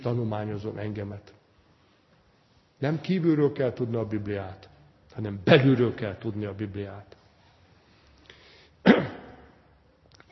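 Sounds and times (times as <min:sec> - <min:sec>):
speech: 0:00.0 - 0:01.4, 0:02.8 - 0:07.2
person sneezing: 0:08.8 - 0:09.6.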